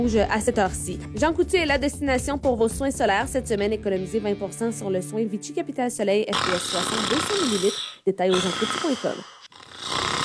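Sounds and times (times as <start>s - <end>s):
speech: 0.0s - 10.0s
person snoring: 6.3s - 10.2s.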